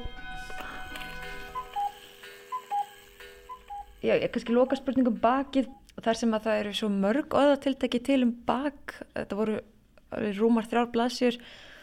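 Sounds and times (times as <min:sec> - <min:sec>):
old cuckoo clock two-note cuckoo calls: 0:00.0 - 0:04.9
speech: 0:04.0 - 0:11.7.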